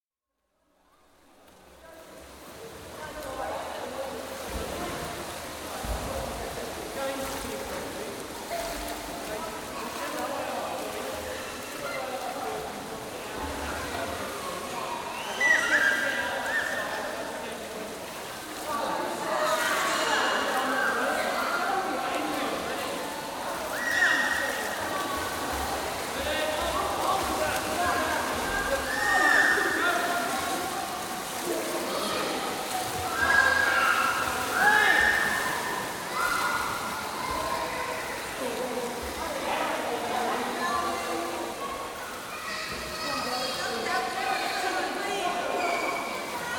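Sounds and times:
atmosphere in crowded indoor pool: 0.2 - 46.5
swimming in crowded indoor pool: 0.9 - 46.5.

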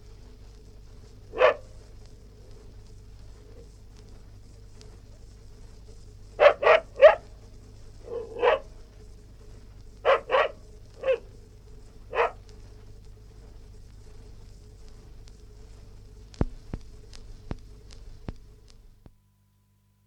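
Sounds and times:
low hum: 0.0 - 19.8
West Highland white terrier yapping indoors: 1.3 - 1.9, 6.4 - 7.3, 8.0 - 8.8, 10.0 - 11.4, 12.1 - 12.4.

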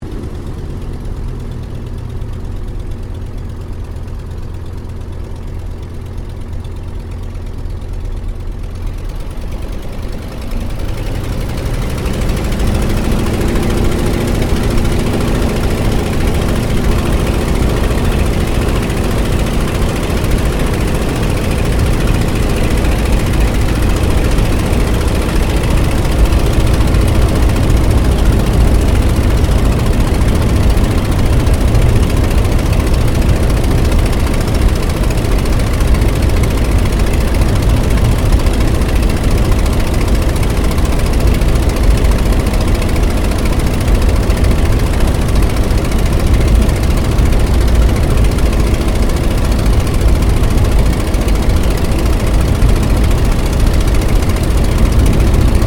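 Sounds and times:
Ryan PT-22 airplane taking off heard from the interior: 0.0 - 55.6.

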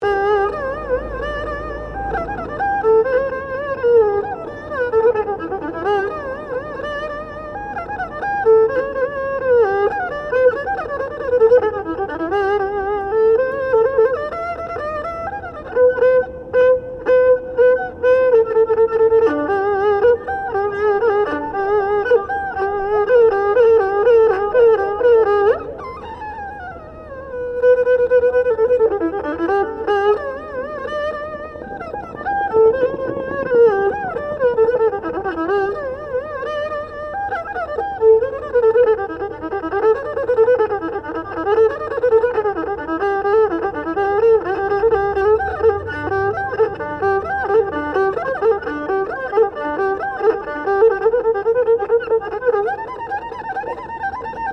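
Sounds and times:
busker playing Chinese erhu in Melbourne: 0.0 - 54.5.

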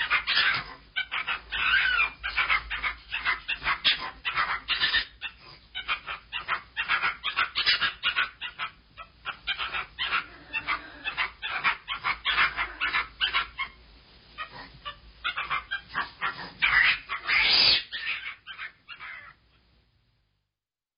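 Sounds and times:
monkey chattering in quick rhythmic raspy bursts: 0.0 - 13.8, 14.4 - 19.4.

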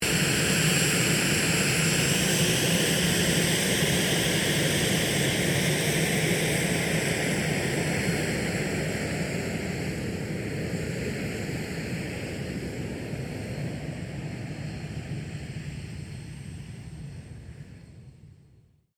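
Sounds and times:
Cessna A-37B Dragonfly jet fighter bomber taxiing: 0.0 - 18.6.

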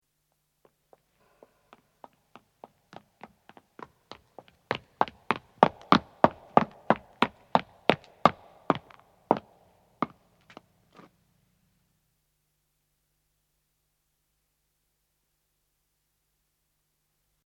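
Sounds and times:
footsteps of a man running on stone, approaching and stopping: 2.0 - 10.2.

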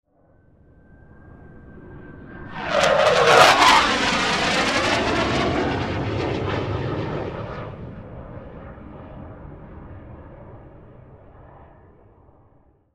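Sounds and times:
warfare jet airplane fast rip passing overhead: 0.2 - 12.8.

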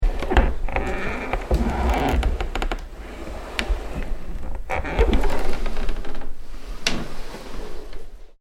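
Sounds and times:
heavy wooden door creaking: 0.0 - 6.4.

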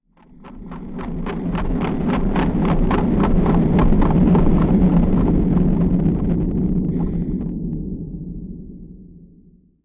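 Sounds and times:
science fiction ambience of toxic dust clouds: 0.2 - 7.8.

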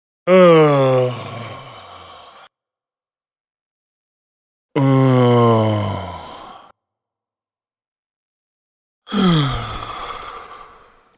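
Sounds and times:
man groaning: 0.3 - 1.8, 4.8 - 6.6, 9.1 - 10.8.

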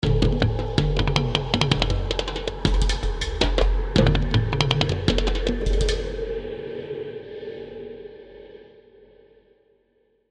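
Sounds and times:
eerie tribal drum rhythm: 0.0 - 6.4.

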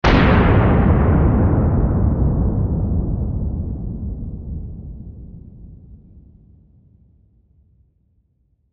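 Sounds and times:
demolition explosion blast: 0.0 - 6.2.

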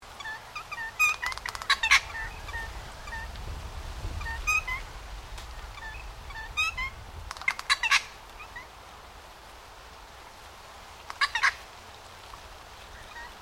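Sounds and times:
low background rumble: 0.1 - 9.2
Noisy friarbird giving harsh nasal cackling calls: 0.2 - 3.4, 4.2 - 4.9, 5.6 - 8.7, 11.1 - 11.6.

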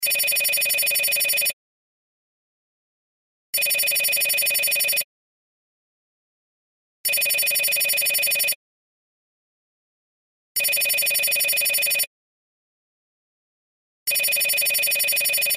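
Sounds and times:
electronic cell telephone ringtone ringing: 0.0 - 1.6, 3.6 - 5.1, 7.1 - 8.6, 10.6 - 12.1, 14.1 - 15.5.

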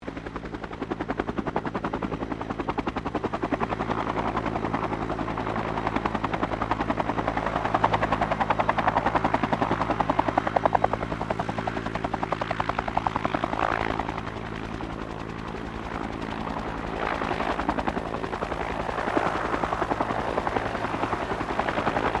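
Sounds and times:
Bell UH-1 Iroquois helicopter hovering: 0.0 - 22.1.

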